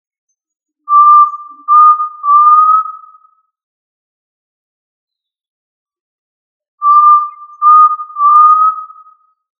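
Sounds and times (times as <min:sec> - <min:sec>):
tinamou giving a steady mid-pitched whistle call: 0:00.9 - 0:03.3, 0:06.8 - 0:09.2.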